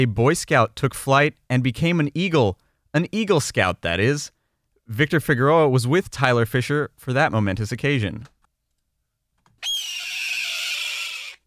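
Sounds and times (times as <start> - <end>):
speech: 0.0 - 8.3
red-tailed hawk scream, recording played back in a radio report: 9.6 - 11.4.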